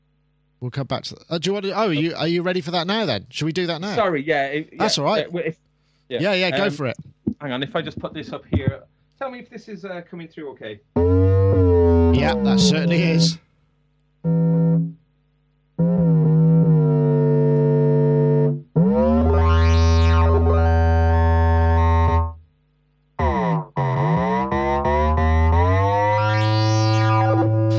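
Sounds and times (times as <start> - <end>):
speech: 0.6 - 13.4, 14.2 - 15.0
deep distorted synthesizer bass tones with pulse width modulation and filter sweeps: 11.0 - 13.4, 15.8 - 22.4, 23.2 - 27.7.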